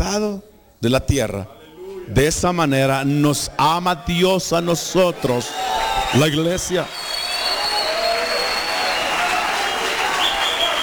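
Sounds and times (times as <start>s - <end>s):
speech: 0.0s - 7.0s
audience applauding: 5.4s - 10.8s.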